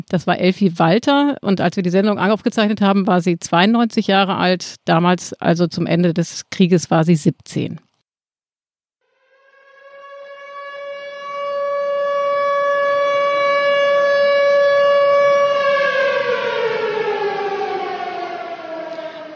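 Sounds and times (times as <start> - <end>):
speech: 0.0 - 7.9
air raid siren wailing: 9.0 - 19.3.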